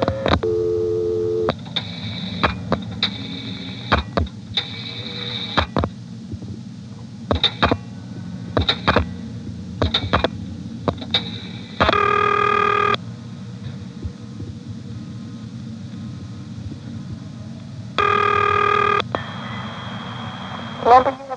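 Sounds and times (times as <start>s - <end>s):
steady tone on an old telephone exchange line: 0.0s - 1.5s, 11.9s - 13.0s, 18.0s - 20.0s
low hum on an old telephone exchange line: 0.0s - 21.3s
short tonal bursts on an old telephone exchange line: 18.0s - 19.0s.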